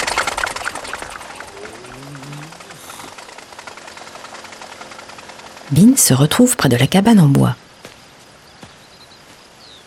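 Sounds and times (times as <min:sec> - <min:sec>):
small Solex moped engine puttering as its rider pulls away: 0:00.0 - 0:06.7
speech: 0:05.7 - 0:07.6.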